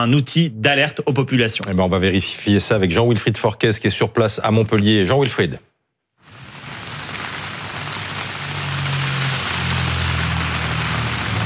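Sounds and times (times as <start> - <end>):
speech: 0.0 - 5.7
heavy rain falling on a street: 6.2 - 11.4.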